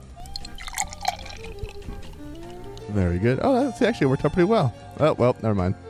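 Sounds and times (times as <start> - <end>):
beer pouring and dribbling from a can: 0.0 - 2.9
drips and small splashes of beer: 0.0 - 2.9
speech: 2.9 - 5.8.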